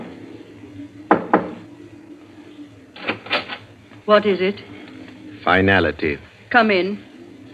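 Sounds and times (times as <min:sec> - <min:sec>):
knocking on the wooden door of a villa at night: 0:01.1 - 0:01.5
speech: 0:04.1 - 0:04.7, 0:05.4 - 0:07.1.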